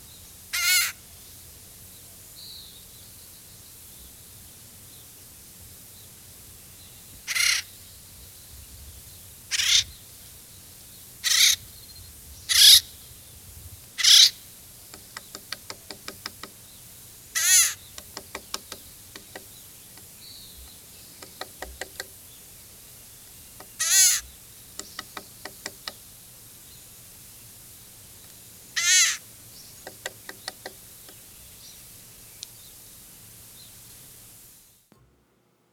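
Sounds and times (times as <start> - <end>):
acorn woodpecker squawks and chatter calls: 0.5 - 1.0, 7.3 - 7.7, 9.5 - 9.9, 11.2 - 11.6, 12.5 - 12.8, 14.0 - 14.4, 17.4 - 20.1, 21.1 - 22.2, 23.6 - 26.0, 28.8 - 29.2, 29.8 - 30.8.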